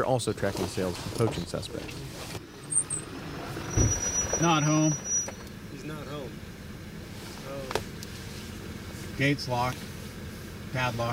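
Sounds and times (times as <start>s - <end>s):
speech: 0.0s - 2.4s, 3.8s - 5.1s, 9.2s - 9.9s, 10.7s - 11.1s
truck engine rumbling as the truck rolls to a stop at a gate in Lake County: 0.0s - 11.1s
faint high whines: 2.4s - 6.4s.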